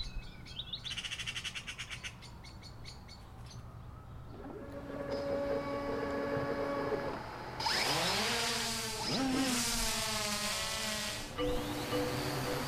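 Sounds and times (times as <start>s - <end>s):
bird chirps: 0.0s - 3.7s, 11.4s - 12.6s
high-powered commercial drone hovering among trees in Massachusetts: 4.3s - 12.6s.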